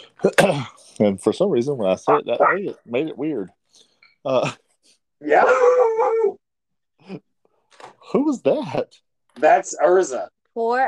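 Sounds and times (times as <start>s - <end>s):
speech: 0.0s - 4.6s, 5.2s - 6.4s, 7.0s - 10.8s
dog barking: 2.1s - 2.8s.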